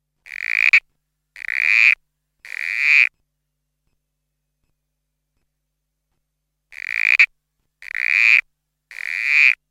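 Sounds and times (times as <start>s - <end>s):
Pseudophryne corroborree Corroborree Frog calling: 0.3s - 0.8s, 1.4s - 3.1s, 6.7s - 9.6s.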